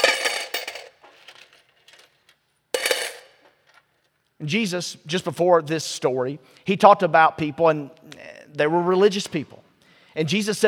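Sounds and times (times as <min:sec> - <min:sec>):
handful of gold coins dropped and clinking: 0:00.0 - 0:03.5
speech: 0:04.4 - 0:09.6, 0:10.2 - 0:10.6.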